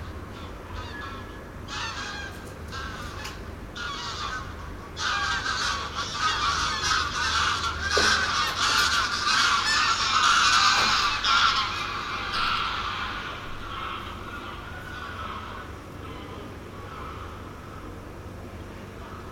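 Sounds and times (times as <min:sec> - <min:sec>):
wild geese in Bavaria: 0:00.0 - 0:19.2.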